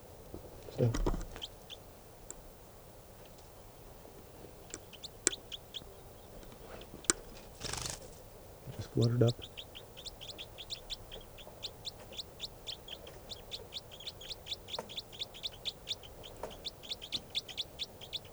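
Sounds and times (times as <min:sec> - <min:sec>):
low ambient hum: 0:00.0 - 0:18.3
speech: 0:00.8 - 0:01.2, 0:09.0 - 0:09.5
bird chirps: 0:04.5 - 0:18.3.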